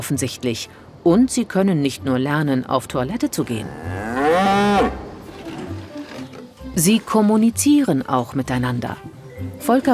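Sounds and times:
speech: 0:00.0 - 0:05.0, 0:06.8 - 0:09.9
cow mooing: 0:03.6 - 0:05.3.

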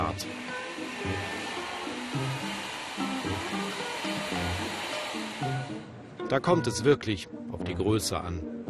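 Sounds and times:
hair dryer blowing while styling a moustache: 0:00.0 - 0:05.9
speech: 0:06.3 - 0:08.5.

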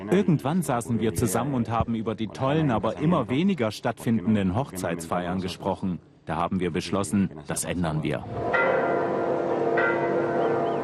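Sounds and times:
speech: 0:00.1 - 0:08.9
cathedral church bells ringing in a dense sustained peal: 0:08.4 - 0:10.8.

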